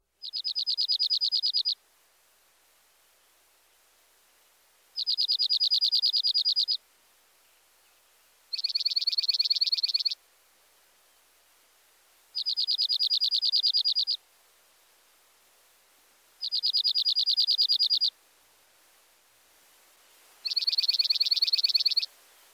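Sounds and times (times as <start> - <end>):
dark-eyed junco singing rapid musical trills: 0.2 - 1.8, 5.0 - 6.8, 8.5 - 10.2, 12.4 - 14.2, 16.4 - 18.1, 20.5 - 22.1.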